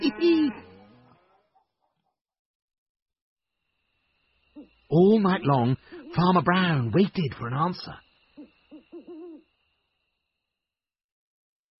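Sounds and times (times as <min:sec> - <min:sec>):
person imitating a cow mooing: 0:00.0 - 0:01.6
speech: 0:04.9 - 0:08.0.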